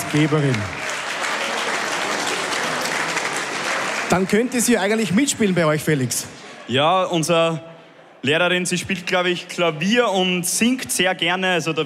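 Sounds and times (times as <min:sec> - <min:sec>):
crowd applauding for a female teacher: 0:00.0 - 0:06.1
speech: 0:00.1 - 0:00.8, 0:04.1 - 0:11.8.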